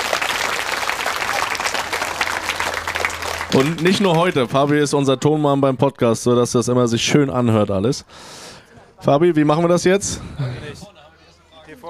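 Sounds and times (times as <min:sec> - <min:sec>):
audience applause: 0:00.0 - 0:04.8
speech: 0:03.6 - 0:10.5.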